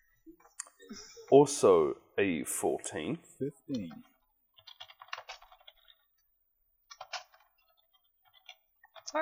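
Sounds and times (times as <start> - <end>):
speech: 0.9 - 4.1
typing on a computer keyboard: 4.5 - 6.0, 6.9 - 9.2.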